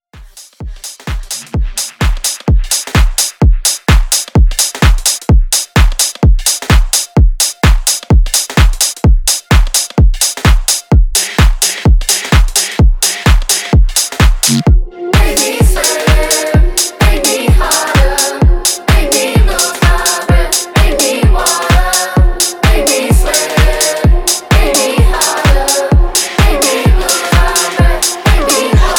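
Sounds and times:
bass house mashup: 0.1s - 28.9s.

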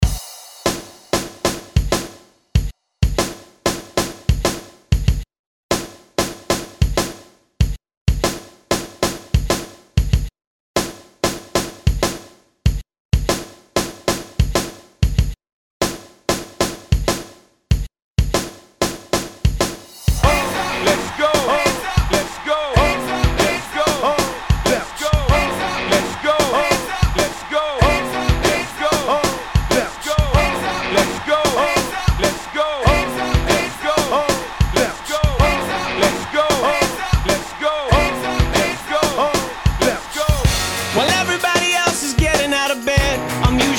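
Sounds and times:
rock drum beat at 95 BPM: 0.0s - 43.7s.

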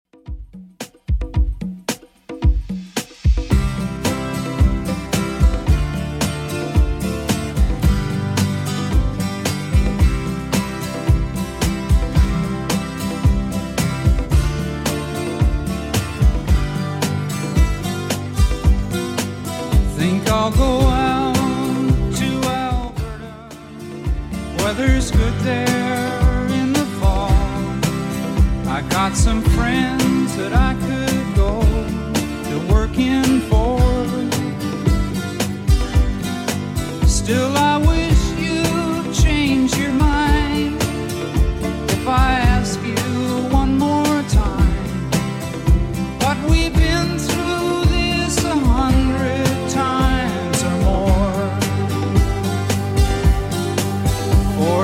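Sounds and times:
1970s style drum beat at 111 bpm: 0.1s - 54.8s.

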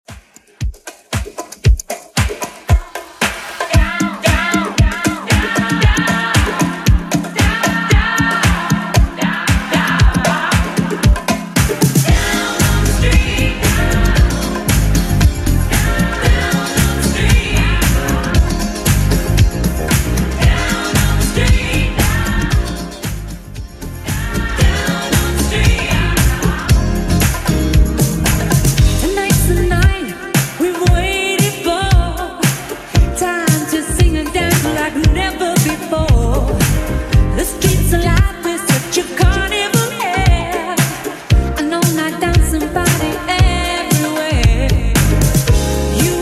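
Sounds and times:
80s drum machine beat: 0.0s - 46.2s.

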